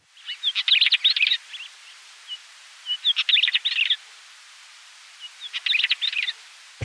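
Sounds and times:
northern wheatear singing: 0:00.1 - 0:04.0, 0:05.2 - 0:06.8.

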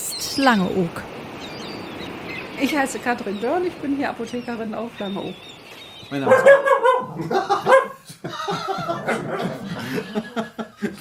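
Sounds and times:
speech: 0:00.4 - 0:01.1, 0:02.6 - 0:05.5, 0:06.1 - 0:07.9, 0:08.5 - 0:11.0
Lagotto Romagnolo water dog barking and yapping at a pharmacy: 0:06.2 - 0:08.0
soft chuckling: 0:07.2 - 0:11.0.

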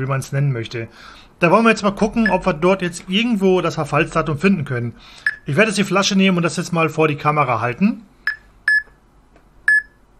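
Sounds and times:
speech: 0:00.0 - 0:08.1
electronic beeping from a device held over a bottle: 0:05.2 - 0:05.5, 0:08.3 - 0:08.9, 0:09.7 - 0:10.0.

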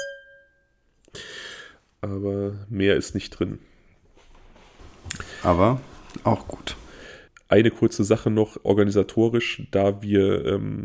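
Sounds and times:
glass of red wine clinking in a toast: 0:00.0 - 0:00.6
speech: 0:02.0 - 0:03.7, 0:05.4 - 0:06.8, 0:07.5 - 0:10.8.

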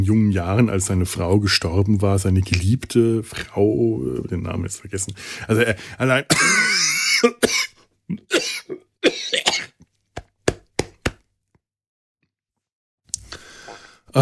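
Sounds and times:
speech: 0:00.0 - 0:08.5
person coughing after a sip went down the wrong way: 0:06.3 - 0:09.8.

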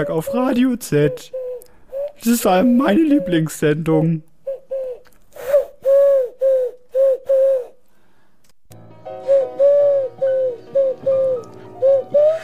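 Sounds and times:
speech: 0:00.0 - 0:01.4, 0:02.2 - 0:04.3
person imitating pigeon cooing in a radio studio: 0:00.0 - 0:03.5, 0:04.5 - 0:07.8, 0:09.4 - 0:12.4.

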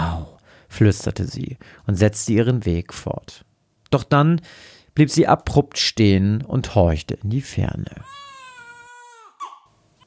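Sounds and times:
speech: 0:00.8 - 0:08.2
baby wailing and crying: 0:08.0 - 0:10.0.

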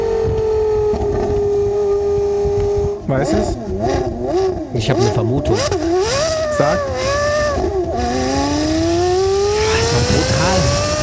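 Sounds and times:
Ferrari sports car engine revving: 0:00.1 - 0:11.0
speech: 0:03.1 - 0:07.2, 0:10.1 - 0:10.9.

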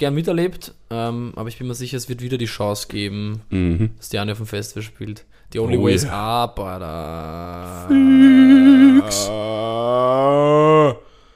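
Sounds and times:
speech: 0:00.0 - 0:11.0
human voice making a sheep-like bleat: 0:07.0 - 0:11.0.

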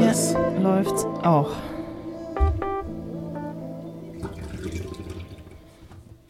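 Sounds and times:
speech: 0:00.1 - 0:01.7
gush of pouring or running liquid: 0:04.1 - 0:05.9
water splashing and trickling: 0:04.2 - 0:05.9.

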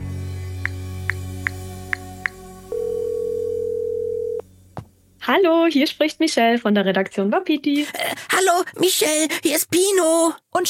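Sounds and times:
telephone dial tone: 0:02.7 - 0:04.4
speech: 0:05.3 - 0:10.6.

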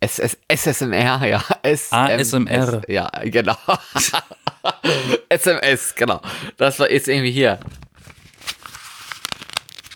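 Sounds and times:
speech: 0:00.0 - 0:07.8
laughter: 0:03.4 - 0:05.3
paper crinkling and tearing in an ASMR demonstration: 0:07.5 - 0:09.9.

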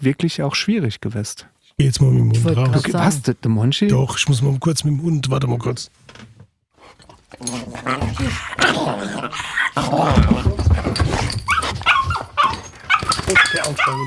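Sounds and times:
speech: 0:00.0 - 0:06.3, 0:06.9 - 0:11.8, 0:13.3 - 0:14.0
dog whimpering and barking: 0:07.4 - 0:14.0.

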